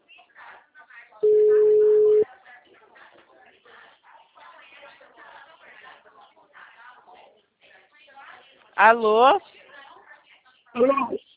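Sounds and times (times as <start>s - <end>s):
telephone busy tone after a dropped call: 1.2s - 2.2s
speech: 8.8s - 9.5s, 10.8s - 11.2s.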